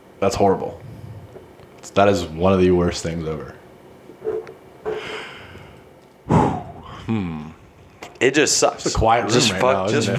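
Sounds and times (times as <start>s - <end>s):
speech: 0.2s - 0.9s, 1.8s - 3.6s, 7.1s - 7.5s, 8.2s - 10.1s
heavy breathing: 0.8s - 1.5s, 4.8s - 7.9s
sniffs: 4.3s - 7.0s
brief voiced groaning exhale: 4.8s - 7.6s.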